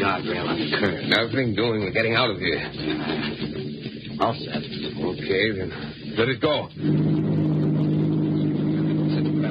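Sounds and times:
speech: 0.1 - 3.6, 4.2 - 7.5
car engine accelerating in high gear: 6.8 - 9.4.

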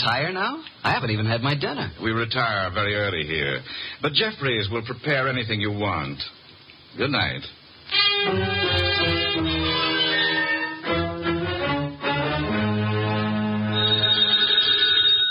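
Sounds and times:
speech: 0.0 - 9.5
sustained musical tones: 8.0 - 15.2
telephone bell ringing: 13.7 - 15.2.

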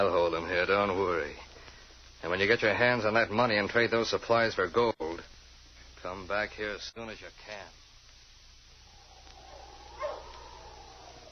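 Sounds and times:
speech: 0.0 - 1.5, 2.2 - 5.0, 6.1 - 7.8
steady hiss: 0.0 - 11.2
sled dog barking at a trading post: 9.4 - 11.2.

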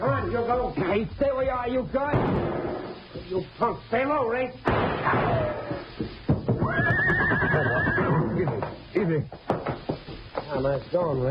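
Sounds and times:
speech: 0.3 - 7.0, 10.6 - 11.2
faint hoof noise: 6.0 - 10.5
horse whinnying: 6.6 - 8.4.

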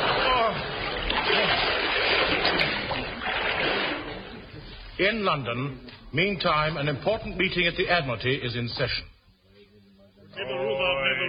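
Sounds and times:
horse splashing into deep water: 0.0 - 4.5
speech: 5.0 - 9.1, 10.4 - 11.0.

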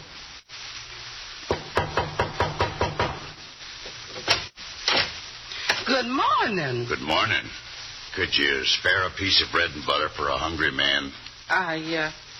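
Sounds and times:
knocking on a back door: 1.5 - 3.2
speech: 6.0 - 12.2.

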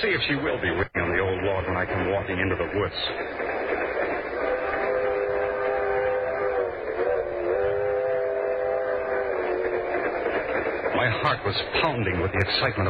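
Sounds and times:
speech: 0.0 - 3.5, 11.0 - 12.8
train rolling along the rails: 0.0 - 12.8
tonal whistle-like drone: 4.4 - 10.0.

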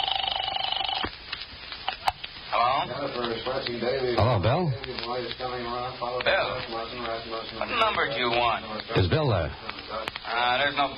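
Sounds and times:
telephone number dialed from a phone booth: 0.0 - 1.1
speech: 2.9 - 10.9.

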